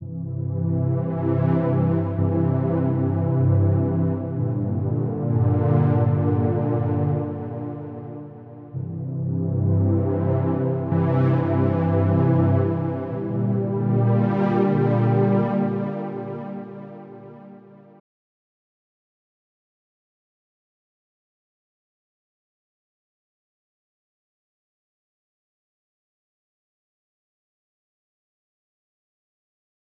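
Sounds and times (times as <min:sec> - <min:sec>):
dry synth pad: 0:00.0 - 0:17.8.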